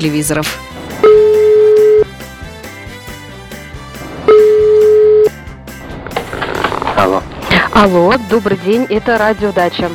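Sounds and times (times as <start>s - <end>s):
speech: 0.0s - 0.7s, 7.8s - 9.9s
continuous music: 0.0s - 9.9s
ringback tone of a telephone call being placed: 1.0s - 2.1s, 4.3s - 5.4s.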